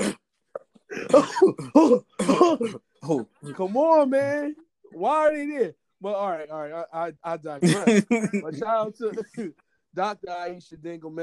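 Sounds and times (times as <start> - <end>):
person coughing raspily: 0.0 - 0.2, 0.9 - 3.6
throat clearing: 0.0 - 3.6
speech: 1.1 - 11.2
laughter: 7.6 - 9.5.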